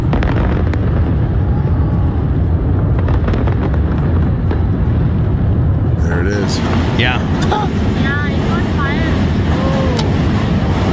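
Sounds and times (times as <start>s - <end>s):
fireworks exploding over a bridge with deep rumbling booms: 0.0s - 10.9s.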